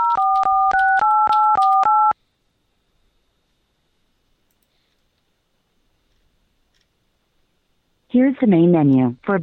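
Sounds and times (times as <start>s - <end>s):
telephone keypad tones entering a phone number into an automated phone menu: 0.0s - 2.2s
speech: 8.2s - 9.4s.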